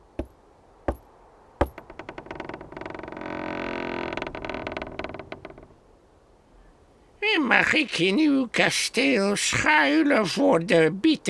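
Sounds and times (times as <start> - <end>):
old woman knocking on a castle door: 1.6 - 1.9
speech: 7.4 - 11.2.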